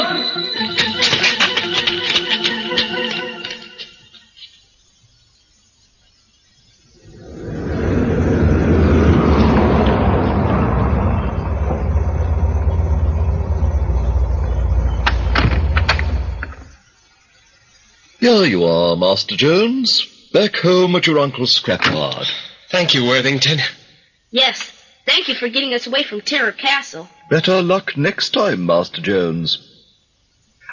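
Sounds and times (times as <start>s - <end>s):
busy clattering activity: 0.6s - 4.0s, 11.4s - 16.7s
car engine driving away: 7.0s - 16.8s
speech: 18.2s - 29.7s.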